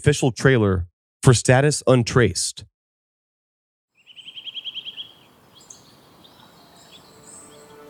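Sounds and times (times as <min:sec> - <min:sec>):
speech: 0:00.0 - 0:02.7
birds chirping outdoors: 0:04.0 - 0:07.8.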